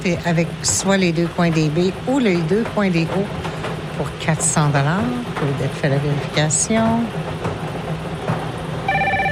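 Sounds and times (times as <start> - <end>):
speech: 0.0 - 7.5
rumbling noise: 0.0 - 9.3
electronic telephone ringing during a bingo game: 8.9 - 9.3.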